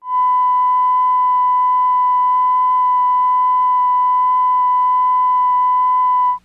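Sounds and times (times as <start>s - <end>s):
1 kHz test tone: 0.0s - 6.4s.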